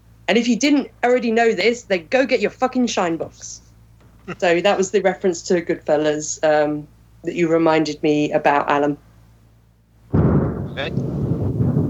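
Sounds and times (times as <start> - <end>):
speech: 0.3 - 3.6, 4.3 - 9.1, 10.8 - 11.2
thunder boom and low rumble: 10.1 - 11.8.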